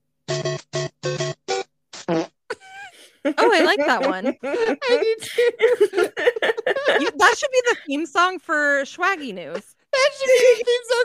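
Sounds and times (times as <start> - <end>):
speech: 0.4 - 1.2, 3.5 - 11.0
cartoonish video game fart sound effect: 1.6 - 2.6
laughter: 2.5 - 8.1, 9.3 - 11.0.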